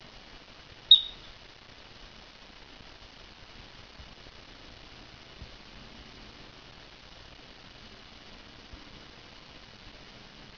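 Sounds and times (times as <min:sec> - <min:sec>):
faint steady hiss: 0:00.0 - 0:10.5
adult marmot piercing high whistle: 0:00.9 - 0:01.3.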